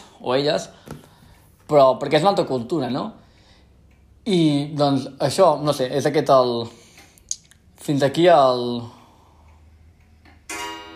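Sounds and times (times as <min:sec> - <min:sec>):
speech: 0:00.2 - 0:00.9, 0:01.7 - 0:03.2, 0:04.2 - 0:06.8, 0:07.8 - 0:09.0
clock chiming at home: 0:10.4 - 0:10.9.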